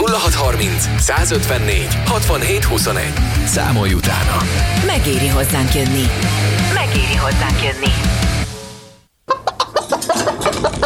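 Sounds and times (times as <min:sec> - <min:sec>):
speech: 0:00.2 - 0:08.2
chicken clucking: 0:09.3 - 0:10.8.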